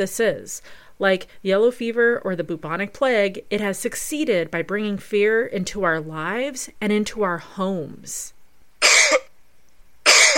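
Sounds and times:
speech: 0:00.0 - 0:08.4
person coughing: 0:08.8 - 0:09.3, 0:10.1 - 0:10.3.

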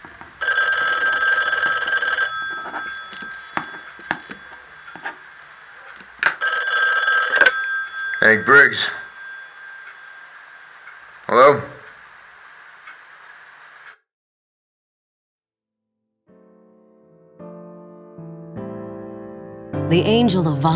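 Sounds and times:
old-fashioned telephone bell ringing: 0:00.4 - 0:12.0
speech: 0:08.3 - 0:09.0, 0:20.0 - 0:20.7.

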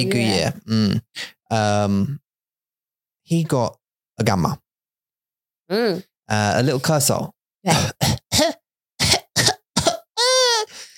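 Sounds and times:
speech: 0:00.0 - 0:02.2, 0:03.3 - 0:04.6, 0:05.7 - 0:08.1
infant of nearly eleven months coughing mucusy coughs: 0:07.7 - 0:10.7
infant whimpering cry: 0:10.2 - 0:10.7.

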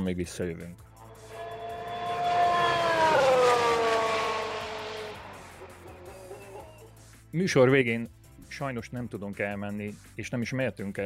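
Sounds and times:
speech: 0:00.0 - 0:00.9, 0:07.3 - 0:11.0
race car driving past with high harmonic engine whine: 0:01.0 - 0:06.9.

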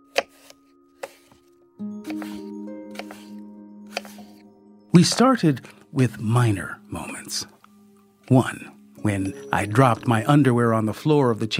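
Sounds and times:
knife chopping food into smaller pieces on a board: 0:00.1 - 0:01.4, 0:02.1 - 0:03.3, 0:03.9 - 0:04.3
soft sustained tones: 0:01.9 - 0:11.1
speech: 0:05.0 - 0:07.6, 0:08.3 - 0:11.5.

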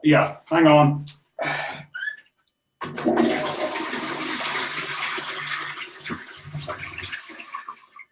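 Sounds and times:
speech: 0:00.0 - 0:01.7
toilet flushing: 0:02.8 - 0:08.1.

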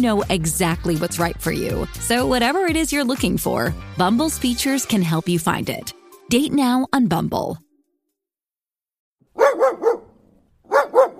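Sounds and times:
speech: 0:00.0 - 0:07.6
dog barking: 0:09.3 - 0:11.1.

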